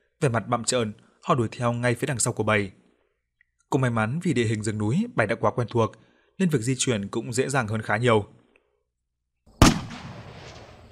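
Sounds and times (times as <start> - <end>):
speech: 0.2 - 2.8, 3.7 - 8.4
gunshot in a mountain forest: 9.6 - 10.8.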